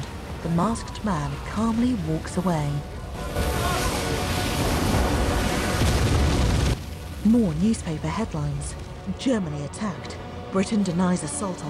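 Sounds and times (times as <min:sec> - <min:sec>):
speech: 0:00.4 - 0:03.8, 0:07.2 - 0:11.6
series of explosions from a missile tearing through an airship: 0:03.2 - 0:09.0.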